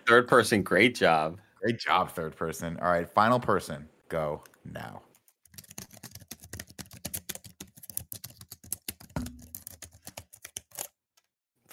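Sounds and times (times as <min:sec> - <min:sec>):
speech: 0:00.1 - 0:05.1
typing on a computer keyboard: 0:05.5 - 0:10.9.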